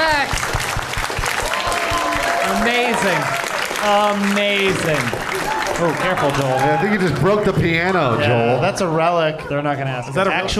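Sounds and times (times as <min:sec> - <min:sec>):
audience applause: 0:00.0 - 0:07.9
voices cheering and talking: 0:01.4 - 0:10.5
speech: 0:03.0 - 0:10.5.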